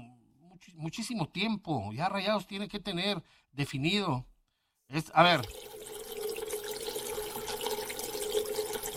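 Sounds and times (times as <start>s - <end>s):
speech: 0.6s - 4.3s, 4.9s - 5.8s
water being poured into a cooking pot: 5.4s - 8.9s.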